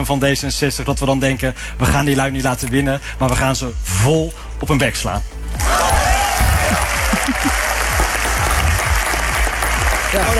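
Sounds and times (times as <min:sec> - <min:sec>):
speech: 0:00.0 - 0:05.9, 0:07.2 - 0:07.7, 0:10.1 - 0:10.3
laughter: 0:00.0 - 0:10.3
large crowd of D66 party members applauding in a hall: 0:05.6 - 0:10.3.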